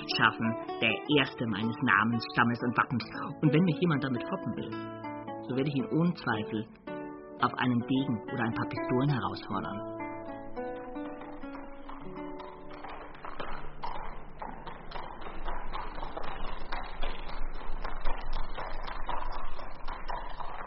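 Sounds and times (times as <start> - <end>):
tonal music-like sound: 0.0 - 20.6
speech: 0.2 - 6.8, 7.4 - 9.9
hunter's horse hooves clip-clopping: 10.3 - 20.6.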